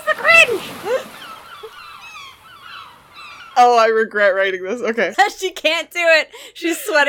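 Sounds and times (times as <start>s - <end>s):
seagulls squawking: 0.0s - 4.0s
speech: 3.6s - 7.0s.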